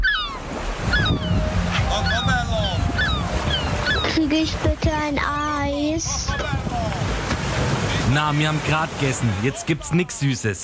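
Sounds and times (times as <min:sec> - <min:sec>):
bright chirping calls, likely gulls: 0:00.0 - 0:04.5
surf washing onto a sea beach: 0:00.2 - 0:05.2, 0:06.4 - 0:10.4
speech: 0:04.3 - 0:07.2, 0:08.1 - 0:10.6.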